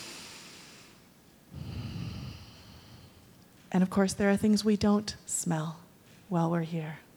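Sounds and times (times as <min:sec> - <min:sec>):
person breathing deeply during a guided deep-breathing exercise: 0:00.0 - 0:03.4
speech: 0:03.7 - 0:07.0.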